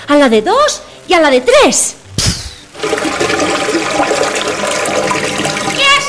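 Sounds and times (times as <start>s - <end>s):
speech: 0.1s - 3.2s
bucket of water thrown to douse a fire, splashing: 2.7s - 6.0s.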